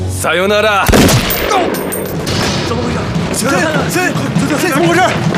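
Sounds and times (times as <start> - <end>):
speech: 0.2 - 5.3
dense burst of gunfire inside a military headquarters: 0.9 - 3.0.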